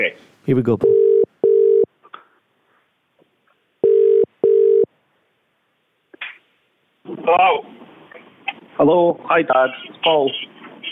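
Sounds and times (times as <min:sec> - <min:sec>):
speech: 0:00.0 - 0:01.0, 0:07.3 - 0:07.7, 0:08.8 - 0:10.5
outgoing call telephone ringing tone: 0:00.8 - 0:01.9, 0:03.8 - 0:04.9.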